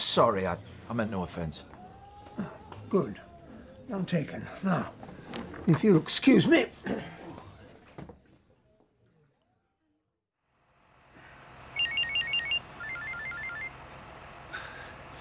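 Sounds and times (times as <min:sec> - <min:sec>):
speech: 0:00.0 - 0:01.8, 0:02.4 - 0:03.3, 0:03.9 - 0:07.2
mobile phone ringing with an incoming call: 0:11.8 - 0:13.8.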